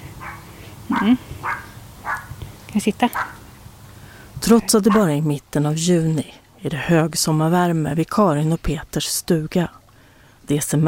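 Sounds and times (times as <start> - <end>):
dogs barking outdoors by a summer cottage on a hot sunny day: 0.0 - 2.4, 3.1 - 3.5, 4.8 - 5.2
speech: 1.0 - 1.6, 2.8 - 3.4, 4.4 - 9.8, 10.5 - 10.8.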